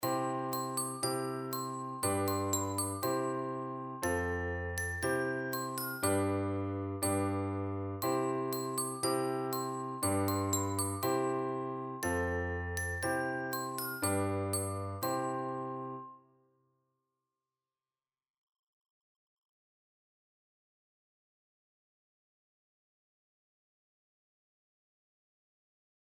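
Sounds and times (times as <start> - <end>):
melody with accompaniment: 0.0 - 16.1.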